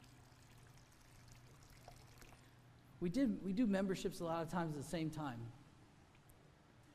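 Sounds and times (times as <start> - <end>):
water pouring into a cup: 0.0 - 2.6
speech: 3.0 - 5.6.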